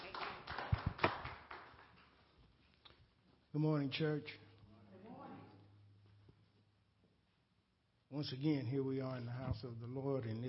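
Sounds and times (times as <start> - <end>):
church audience clapping hands in praise: 0.0 - 2.3
speech: 3.6 - 4.4, 8.2 - 10.4.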